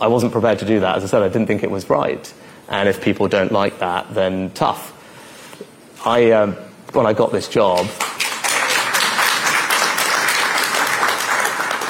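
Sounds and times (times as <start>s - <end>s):
speech: 0.0s - 4.9s, 6.0s - 8.0s
crowd applauding: 7.9s - 11.8s.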